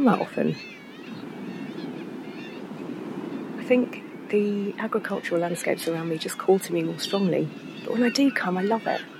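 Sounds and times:
speech: 0.0s - 0.8s, 3.7s - 9.1s
surf at seaside dunes: 0.0s - 9.1s
wind at seaside dunes: 0.0s - 9.1s.

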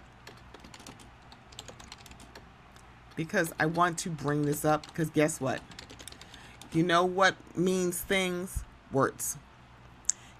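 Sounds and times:
light typing on a computer keyboard: 0.2s - 2.5s, 3.1s - 6.8s
speech: 3.2s - 5.8s, 6.7s - 9.5s.

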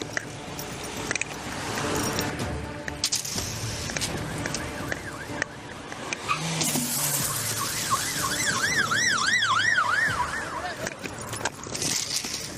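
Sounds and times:
road noise: 0.0s - 12.5s
police siren wailing in rising and falling sweeps: 3.7s - 11.5s.

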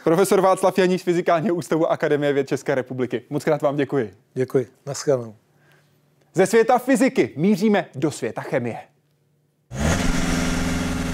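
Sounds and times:
speech: 0.0s - 5.4s, 6.3s - 8.9s
car engine revving: 9.7s - 11.1s.

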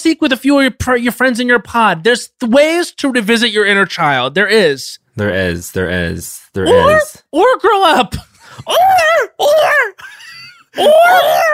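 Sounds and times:
speech: 0.0s - 10.1s, 10.8s - 11.5s
person screaming loudly in wavering bursts: 6.6s - 7.2s, 8.6s - 11.5s
thin quiet cry: 6.6s - 7.2s, 8.6s - 11.5s.

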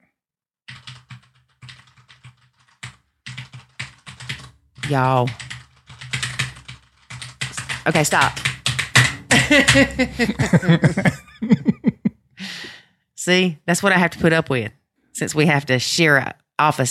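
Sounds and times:
typing on a computer keyboard: 0.7s - 10.1s
speech: 4.9s - 5.4s, 7.9s - 8.5s, 9.3s - 11.9s, 13.2s - 16.8s
laughter: 9.3s - 12.1s.

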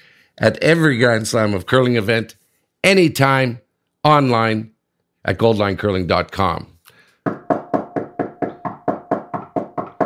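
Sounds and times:
speech: 0.4s - 7.4s
loud knocks on a door: 7.2s - 10.0s.

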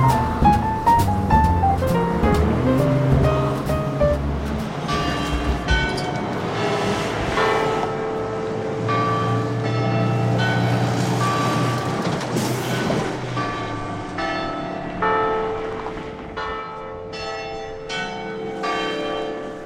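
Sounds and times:
church bells ringing: 0.0s - 19.6s.

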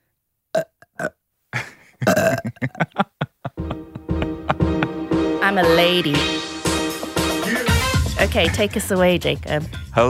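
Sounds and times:
long loud guttural burp: 0.6s - 1.2s, 2.0s - 2.6s
laughter: 1.6s - 5.1s, 7.4s - 8.8s
speech: 5.6s - 6.4s, 8.2s - 10.0s.

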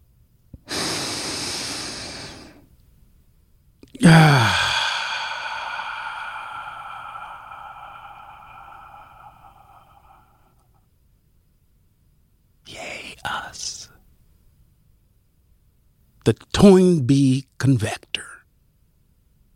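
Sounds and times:
deep breath: 0.6s - 2.7s, 3.9s - 10.9s
speech: 16.2s - 18.3s.

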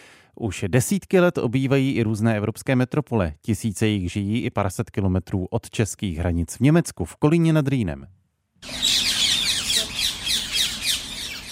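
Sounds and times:
speech: 0.4s - 9.0s
Alexandrine parakeets squawking in city trees: 8.6s - 11.4s.

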